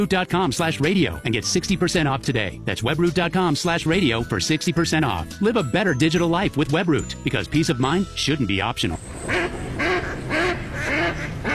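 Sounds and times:
speech: 0:00.0 - 0:09.6
duck quacking: 0:09.3 - 0:11.5.

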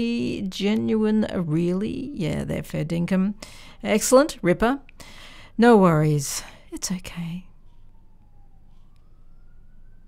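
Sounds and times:
speech: 0:00.0 - 0:07.5
emergency vehicle siren wailing outside: 0:00.0 - 0:10.0.

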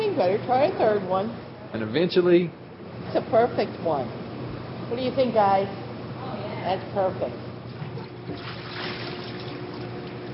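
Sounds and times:
speech: 0:00.2 - 0:04.2, 0:04.9 - 0:05.8, 0:06.6 - 0:07.5, 0:08.3 - 0:08.9
water splashing and sloshing in a kitchen: 0:07.7 - 0:10.3.

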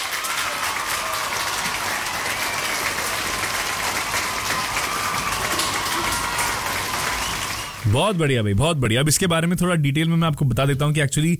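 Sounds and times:
crowd applause: 0:00.0 - 0:08.4
speech: 0:07.9 - 0:11.3.

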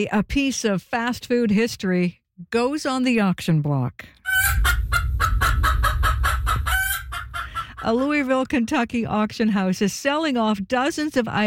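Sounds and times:
speech: 0:00.0 - 0:04.6, 0:07.8 - 0:11.4
chickens clucking: 0:04.3 - 0:08.2
low rumbling background: 0:04.5 - 0:08.3.

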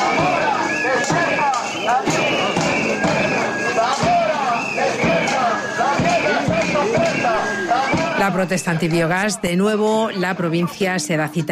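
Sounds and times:
sharp percussive hits: 0:00.0 - 0:08.4
crowd of protesters chanting slogans: 0:00.0 - 0:11.4
speech: 0:08.3 - 0:11.4.

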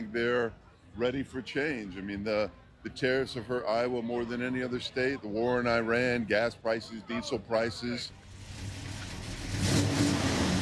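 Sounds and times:
speech: 0:00.1 - 0:08.2
vintage car engine revving: 0:08.2 - 0:10.6.

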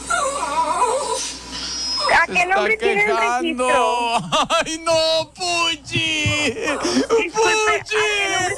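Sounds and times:
small dog whimpering and whining: 0:00.0 - 0:02.3
people talking: 0:02.1 - 0:08.5.

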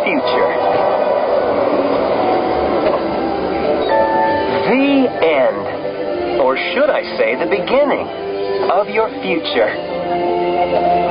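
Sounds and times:
magnetic hover train passing with whooshing hum: 0:00.0 - 0:11.0
speech: 0:00.1 - 0:00.5, 0:06.4 - 0:10.9.

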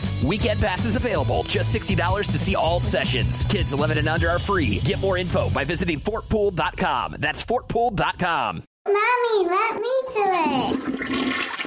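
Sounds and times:
speech: 0:00.2 - 0:11.4
child speaking: 0:08.9 - 0:10.8
toilet flushing: 0:10.5 - 0:11.6.

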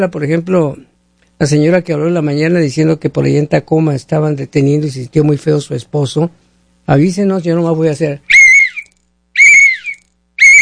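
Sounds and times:
speech: 0:00.0 - 0:08.4
small hand whistle blown in sharp bursts: 0:08.3 - 0:10.6.

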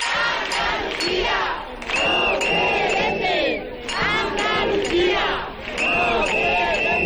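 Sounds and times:
crowd chanting in unison at a street march for housing rights: 0:00.0 - 0:07.0
shrill whistle blasts: 0:01.9 - 0:03.7, 0:05.8 - 0:07.0.

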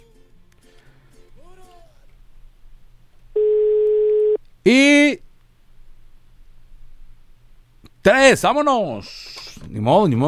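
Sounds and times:
ringing tone of an outgoing telephone call: 0:03.4 - 0:04.4
speech: 0:08.0 - 0:10.2.

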